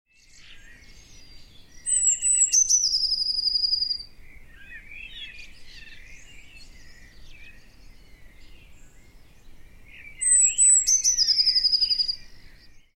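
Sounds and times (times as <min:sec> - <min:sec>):
Eurasian blue tit Cyanistes caeruleus calling: 0:00.6 - 0:08.8, 0:09.9 - 0:12.7.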